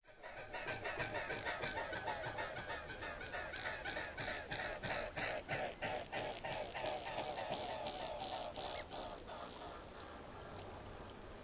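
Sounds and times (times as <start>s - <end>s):
mute swan calling: 0.2s - 10.7s.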